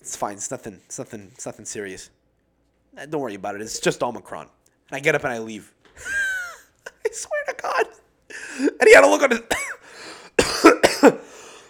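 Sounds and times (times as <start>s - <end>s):
speech: 0.0s - 2.2s, 2.9s - 6.2s, 8.6s - 9.6s
harsh throaty coughs: 9.5s - 11.6s.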